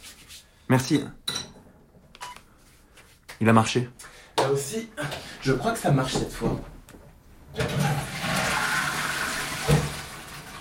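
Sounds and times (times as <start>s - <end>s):
speech: 0.7s - 1.2s, 3.4s - 6.7s
repaired toilet flushing: 7.5s - 10.5s.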